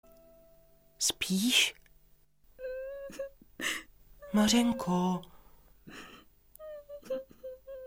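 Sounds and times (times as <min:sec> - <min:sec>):
speech: 0:01.0 - 0:01.8, 0:04.3 - 0:05.3
girl crying and whimpering: 0:02.6 - 0:05.0, 0:05.9 - 0:07.8.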